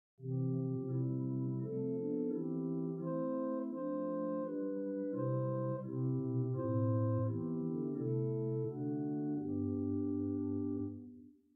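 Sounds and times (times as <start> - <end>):
Great Dulciana organ stop: 0.2 - 11.0.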